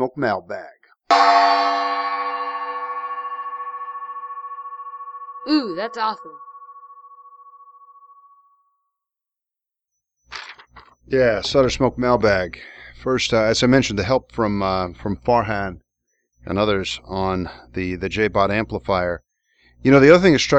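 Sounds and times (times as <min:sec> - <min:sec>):
speech: 0:00.0 - 0:01.7, 0:05.4 - 0:06.5, 0:11.1 - 0:15.8, 0:16.4 - 0:19.2, 0:19.8 - 0:20.5
gong being struck and ringing out: 0:01.1 - 0:07.9.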